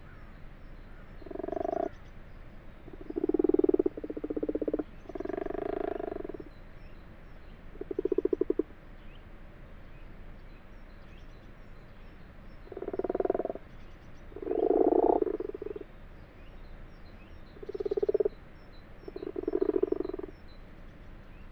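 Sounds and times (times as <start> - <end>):
common frogs purring croaks in a water-filled wash house: 1.2 - 2.0, 2.8 - 6.6, 7.7 - 8.8, 12.6 - 13.7, 14.3 - 15.9, 17.5 - 18.4, 19.0 - 20.4.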